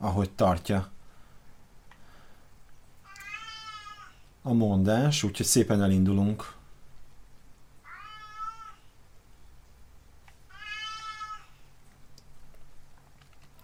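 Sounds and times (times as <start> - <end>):
speech: 0.0 - 1.0, 4.4 - 6.6
low steady hum: 0.0 - 13.6
pet cat meowing: 3.0 - 4.2, 7.8 - 8.9, 10.5 - 11.6.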